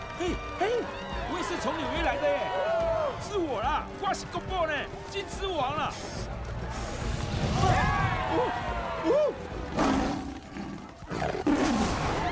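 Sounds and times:
speech: 0:00.2 - 0:02.7, 0:03.3 - 0:06.5, 0:07.5 - 0:10.0
lion roaring in an animated film: 0:09.7 - 0:12.3.

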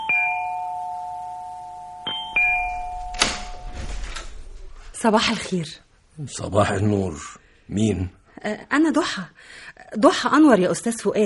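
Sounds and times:
doorbell chiming: 0:00.0 - 0:03.9
rustling: 0:02.5 - 0:05.4
speech: 0:05.0 - 0:11.2.

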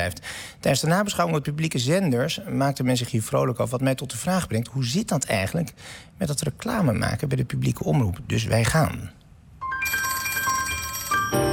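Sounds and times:
speech: 0:00.0 - 0:09.2
telephone ringing to place a call: 0:09.6 - 0:11.5.

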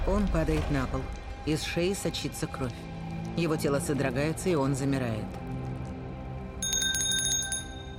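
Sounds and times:
speech: 0:00.1 - 0:05.4
small hand bell ringing: 0:06.6 - 0:07.9.

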